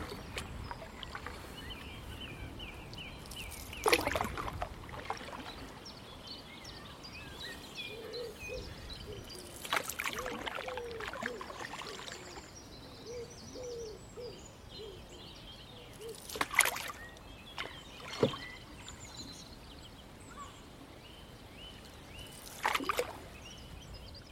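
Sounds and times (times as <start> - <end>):
canoe paddle dipping and sweeping upstream on a river: 0.0 - 6.0, 9.4 - 12.5, 16.1 - 19.2, 22.2 - 23.5
soft low murmur of river water: 0.0 - 6.2, 8.1 - 12.7, 16.0 - 19.4, 22.2 - 23.6
birds chirping and trilling from river banks: 0.0 - 24.3.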